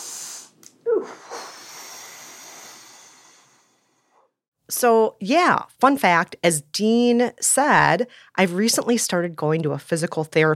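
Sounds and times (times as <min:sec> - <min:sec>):
person taking a deep breath: 0:00.0 - 0:04.4
speech: 0:04.8 - 0:10.5.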